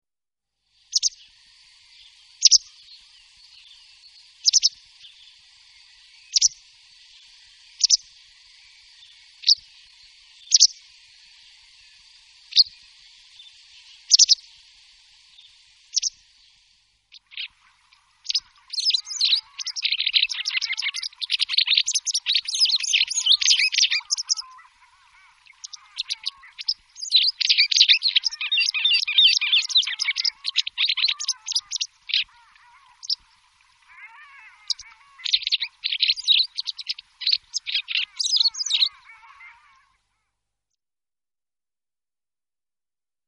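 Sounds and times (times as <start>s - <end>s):
wagtail calling: 0.9s - 14.6s, 15.3s - 16.2s, 17.1s - 40.0s.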